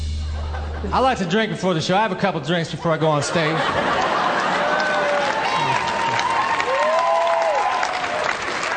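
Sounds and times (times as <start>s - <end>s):
laughter: 0.2s - 6.4s
speech: 0.9s - 4.2s
large audience applauding at a live show: 3.5s - 8.7s
scattered voices and cheers: 3.5s - 8.7s.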